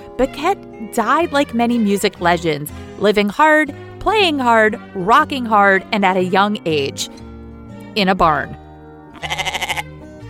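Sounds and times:
speech: 0.2s - 7.2s, 8.0s - 8.6s
goat bleating with rapid trembling vibrato: 9.1s - 9.9s.

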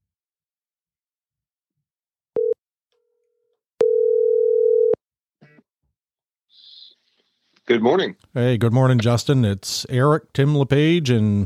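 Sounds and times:
telephone dial tone while placing a call: 2.4s - 2.6s, 3.8s - 5.0s
speech: 7.7s - 11.4s.

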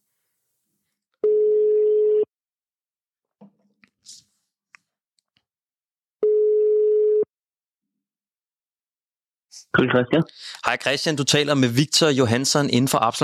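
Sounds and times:
low-pitched telephone ringback tone while calling someone: 1.2s - 2.3s, 6.2s - 7.3s
speech: 9.7s - 13.2s.

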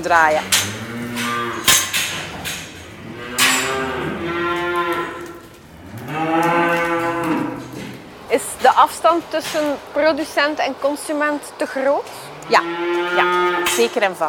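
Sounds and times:
speech: 0.0s - 1.2s, 8.3s - 14.2s
dairy cows mooing: 0.0s - 8.1s, 12.2s - 14.2s.

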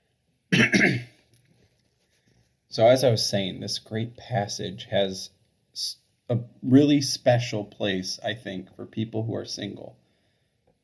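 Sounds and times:
person with a bad cough coughing harshly: 0.5s - 1.2s
speech: 2.8s - 10.0s
person breathing: 10.0s - 10.6s.

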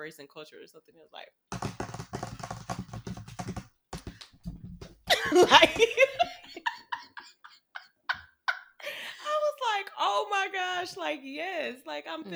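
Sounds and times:
speech: 0.0s - 1.7s, 5.3s - 6.4s, 10.0s - 12.3s
typing on a computer keyboard: 1.5s - 4.4s
giggly vocal sound: 5.1s - 9.1s.

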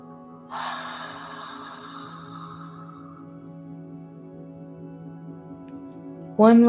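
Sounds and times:
soft humming drone: 0.0s - 6.6s
deep breath: 0.5s - 3.6s
speech: 6.4s - 6.6s.

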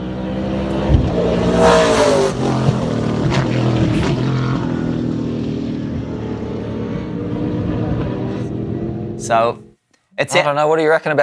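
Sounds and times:
Gen 3 race car engine running: 0.0s - 9.7s
speech: 9.3s - 9.6s, 10.2s - 11.2s.

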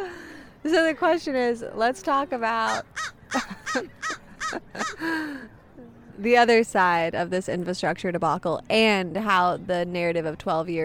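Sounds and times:
speech: 0.6s - 5.6s, 6.2s - 10.8s
crow cawing: 2.7s - 5.0s.

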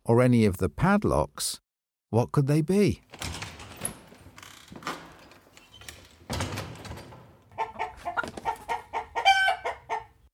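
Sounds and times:
speech: 0.1s - 3.2s
rustling and clattering movement noises: 3.0s - 9.1s
chicken clucking: 7.4s - 10.3s.

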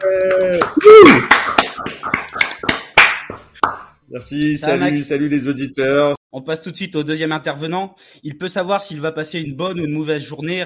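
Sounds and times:
person cheering or whooping: 0.0s - 1.6s
a few people clapping for a speaker: 0.0s - 4.0s
speech: 4.2s - 10.6s.

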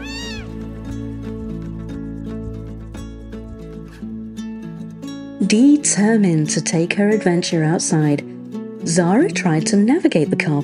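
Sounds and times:
startled cat meowing: 0.0s - 0.6s
sustained music: 0.0s - 4.3s
speech: 5.4s - 8.3s, 8.9s - 10.6s.

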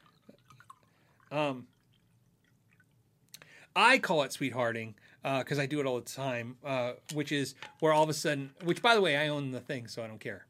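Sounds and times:
spilled water dripping: 0.0s - 3.5s
speech: 1.3s - 1.7s, 3.8s - 10.4s.

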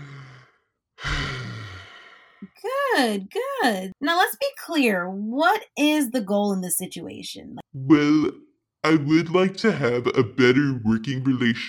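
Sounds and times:
deep breath in: 0.0s - 2.4s
speech: 2.6s - 11.6s.

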